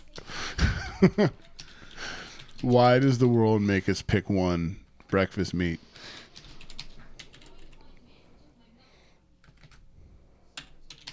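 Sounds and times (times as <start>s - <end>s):
speech: 1.0s - 1.4s, 2.6s - 5.8s
typing on a computer keyboard: 1.3s - 3.2s, 6.2s - 8.0s, 9.4s - 9.8s, 10.6s - 11.1s.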